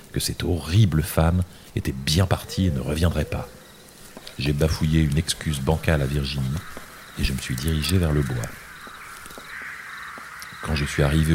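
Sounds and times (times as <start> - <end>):
speech: 0.2 - 3.6, 4.4 - 8.6, 10.6 - 11.3
countless crows cawing at dusk on a roof, fences and branches by a wood: 2.1 - 4.4, 5.3 - 11.3.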